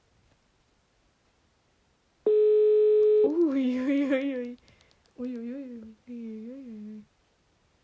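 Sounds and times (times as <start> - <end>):
telephone busy tone after the call is hung up: 2.3 - 3.3.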